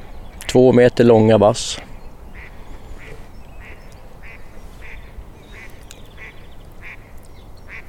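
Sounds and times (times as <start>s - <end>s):
outdoor noise on a lake: 0.0s - 7.8s
speech: 0.5s - 1.9s
duck quacking on a reed-lined lake: 2.4s - 7.0s, 7.7s - 7.8s.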